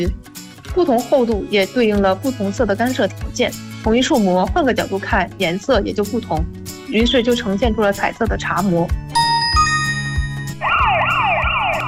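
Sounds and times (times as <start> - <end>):
speech: 0.0 - 9.0
soft chiming tones in a musical backdrop: 9.2 - 10.6
passing emergency vehicle siren wailing with Doppler pitch shift: 10.5 - 11.8.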